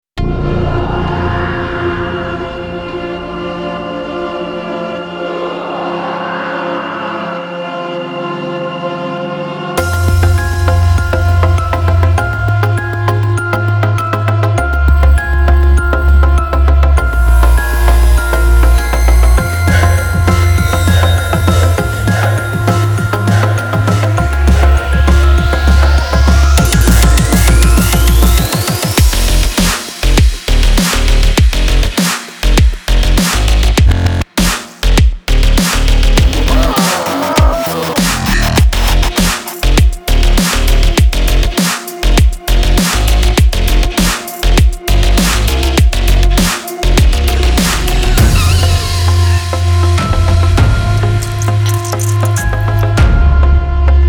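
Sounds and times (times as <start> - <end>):
music track at 100 bpm in F: 0.2 - 54.0.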